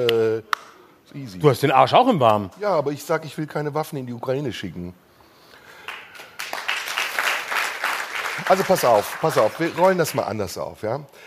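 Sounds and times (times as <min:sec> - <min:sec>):
speech: 0:01.1 - 0:05.0, 0:08.5 - 0:11.2
rapid hand claps: 0:05.8 - 0:10.4.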